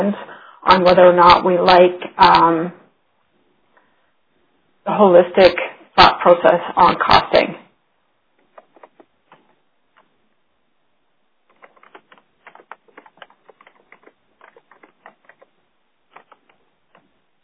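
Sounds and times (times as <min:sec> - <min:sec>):
speech: 0:00.0 - 0:02.8, 0:04.8 - 0:07.6
rapid keyboard typing: 0:08.4 - 0:09.4, 0:11.4 - 0:17.1.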